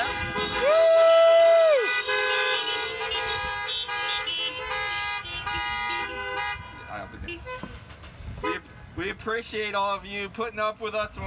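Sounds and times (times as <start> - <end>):
many overlapping car horns honking: 0.0 - 0.9, 1.8 - 8.7
speech: 9.4 - 11.2.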